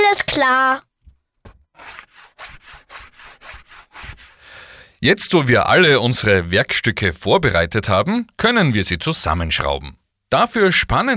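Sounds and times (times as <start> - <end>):
speech: 0.4 - 0.9, 5.0 - 11.1
sandpaper scratching against wooden edges: 1.8 - 4.4.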